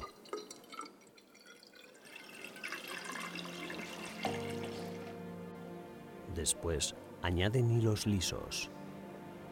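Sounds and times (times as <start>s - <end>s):
water pouring into a dye cylinder: 0.0s - 5.2s
speech: 6.4s - 8.8s.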